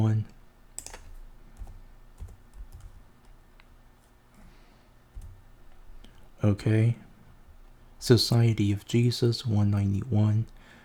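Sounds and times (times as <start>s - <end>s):
typing on a computer keyboard: 0.8s - 3.4s, 5.1s - 5.4s
speech: 6.4s - 7.0s, 8.0s - 10.6s.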